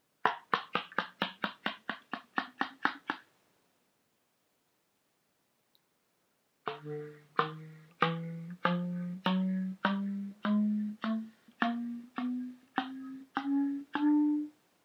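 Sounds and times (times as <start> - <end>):
slap with and without pitch: 0.2 - 3.3, 6.7 - 14.2.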